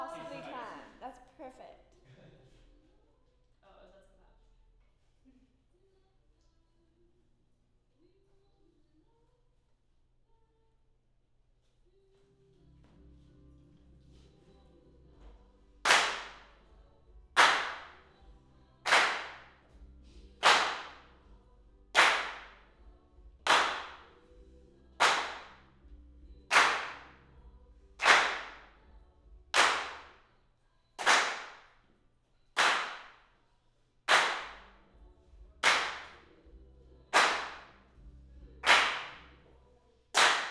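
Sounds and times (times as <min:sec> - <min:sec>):
claps: 0:15.8 - 0:16.6, 0:17.4 - 0:18.1, 0:18.9 - 0:19.6, 0:20.4 - 0:21.1, 0:22.0 - 0:22.6, 0:23.5 - 0:24.2, 0:25.0 - 0:25.6, 0:26.5 - 0:27.2, 0:28.0 - 0:28.7, 0:29.6 - 0:30.2, 0:31.0 - 0:31.7, 0:32.6 - 0:33.2, 0:34.1 - 0:34.7, 0:35.6 - 0:36.3, 0:37.1 - 0:37.8, 0:38.6 - 0:39.4, 0:40.2 - 0:40.4.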